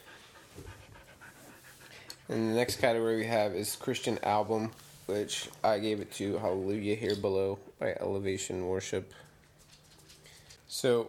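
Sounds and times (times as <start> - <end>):
dog panting: 0.0 - 2.6
speech: 2.3 - 9.2, 10.7 - 11.0.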